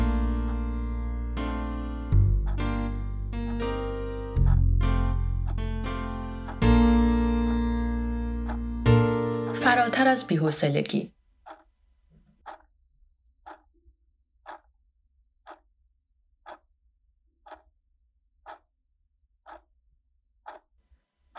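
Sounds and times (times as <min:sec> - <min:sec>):
clock ticking: 0:00.2 - 0:00.7, 0:01.4 - 0:04.8, 0:05.4 - 0:07.7, 0:08.4 - 0:11.7, 0:12.4 - 0:12.7, 0:13.4 - 0:13.8, 0:14.4 - 0:14.7, 0:15.4 - 0:15.7, 0:16.4 - 0:16.7, 0:17.4 - 0:17.7, 0:18.4 - 0:18.7, 0:19.4 - 0:19.7, 0:20.4 - 0:20.7
speech: 0:09.8 - 0:11.2.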